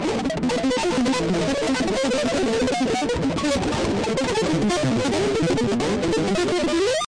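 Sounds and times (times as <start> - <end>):
guitar random hammering: 0.0 - 7.0.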